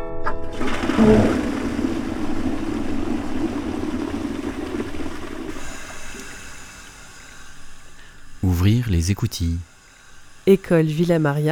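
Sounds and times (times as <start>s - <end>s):
toilet flushing with rushing water: 0.5s - 7.9s
speech: 1.0s - 1.5s, 9.0s - 9.7s, 10.4s - 11.5s.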